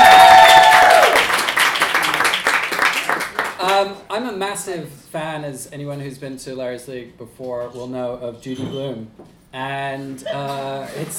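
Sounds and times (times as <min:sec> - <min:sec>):
audience applause at a live storytelling event: 0:00.0 - 0:03.8
speech: 0:04.2 - 0:11.1.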